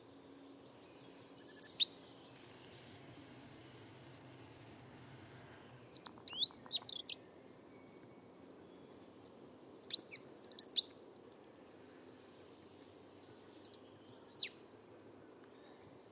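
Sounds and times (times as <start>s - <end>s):
bird giving very high squeaky chirping calls: 0.0s - 3.0s, 4.1s - 11.0s, 12.2s - 14.6s
soft low background hum: 0.0s - 16.1s.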